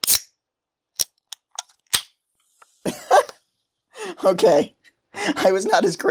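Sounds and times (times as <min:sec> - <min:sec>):
soda can cracking open: 0:00.0 - 0:00.3, 0:01.0 - 0:02.2
speech: 0:04.2 - 0:06.0.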